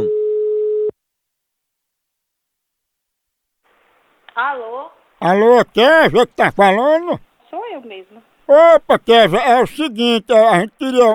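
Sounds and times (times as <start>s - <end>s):
telephone line tone while placing a call: 0.0s - 0.9s
speech: 4.4s - 11.1s.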